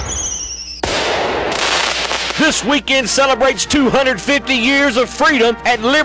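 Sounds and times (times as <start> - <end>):
firework whistling: 0.0 - 2.7
speech: 2.4 - 6.0.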